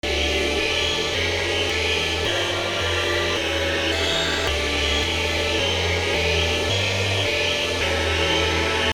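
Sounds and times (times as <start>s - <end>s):
chorus synth boss music: 0.0s - 8.9s.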